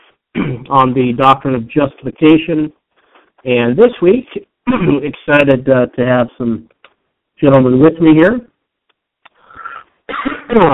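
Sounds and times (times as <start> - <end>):
person with a cold coughing: 0.4 - 0.7, 4.7 - 5.1, 9.6 - 10.7
speech: 0.6 - 2.8, 3.4 - 6.8, 7.4 - 8.5, 10.2 - 10.7.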